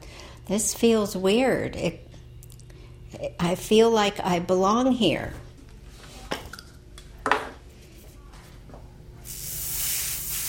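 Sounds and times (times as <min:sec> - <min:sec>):
speech: 0:00.5 - 0:02.1, 0:03.2 - 0:05.4
hairspray hissing from an aerosol can being sprayed on hair: 0:09.2 - 0:10.4.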